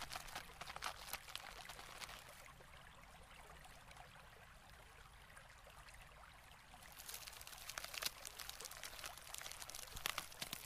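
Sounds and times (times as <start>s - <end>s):
dense crackling fizz of glacier ice: 0.0s - 2.4s, 6.8s - 10.6s
steady trickling and pouring glacier meltwater: 0.0s - 10.6s.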